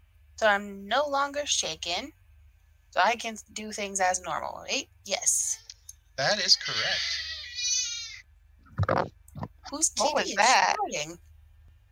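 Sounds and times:
speech: 0:00.4 - 0:02.2, 0:02.9 - 0:05.6, 0:06.2 - 0:07.3, 0:08.9 - 0:11.3
baby fussing: 0:06.4 - 0:08.2.

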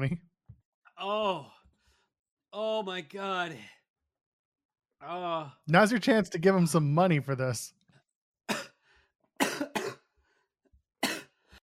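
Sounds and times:
speech: 0:00.0 - 0:00.3, 0:01.0 - 0:01.6, 0:02.5 - 0:03.8, 0:05.0 - 0:07.8
person coughing harshly: 0:08.5 - 0:08.8, 0:09.4 - 0:10.1, 0:11.0 - 0:11.4.

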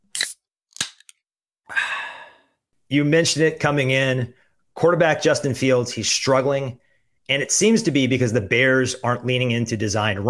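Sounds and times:
drink can from a six-pack cracking open: 0:00.1 - 0:01.2
speech: 0:02.9 - 0:10.2.

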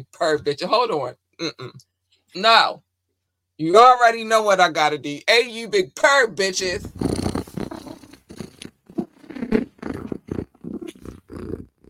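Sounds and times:
speech: 0:00.0 - 0:02.8, 0:03.6 - 0:07.2
female cat purring: 0:06.6 - 0:11.8.

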